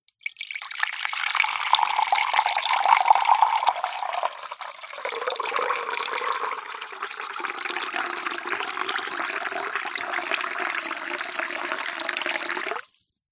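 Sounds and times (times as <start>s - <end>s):
household water pouring slowly into glass jug: 0.1s - 13.0s.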